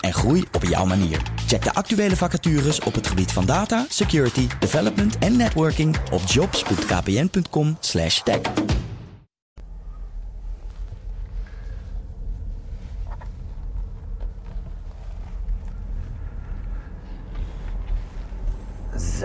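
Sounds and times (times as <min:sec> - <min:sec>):
speech: 0:00.0 - 0:08.8
quiet electric car driving with steady low road rumble: 0:09.6 - 0:19.2.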